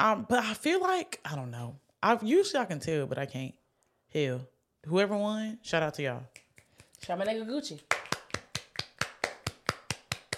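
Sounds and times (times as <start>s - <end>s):
speech: 0.0s - 6.4s, 7.0s - 8.0s
crisp church-style hand claps: 6.3s - 10.3s.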